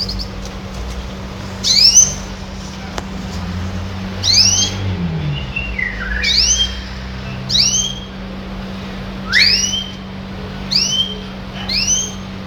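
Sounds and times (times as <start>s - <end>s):
steady low hum: 0.0s - 12.4s
red siskin slurred whistle: 4.2s - 8.2s, 9.2s - 12.4s.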